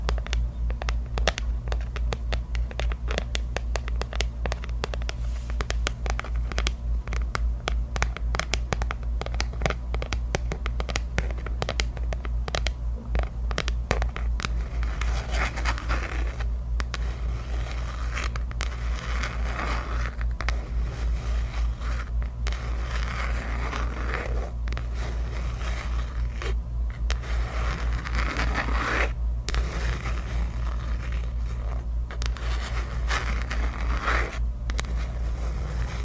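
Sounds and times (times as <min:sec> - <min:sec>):
long nails tapping on assorted objects: 0:00.0 - 0:35.2
steady low hum: 0:00.0 - 0:36.0
rough scraping strokes: 0:14.9 - 0:36.0.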